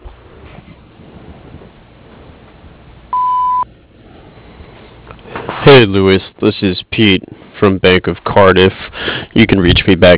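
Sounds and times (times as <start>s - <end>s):
quiet low noise: 0.0s - 10.1s
answering machine electronic beep tone: 3.1s - 3.7s
speech: 5.6s - 10.1s.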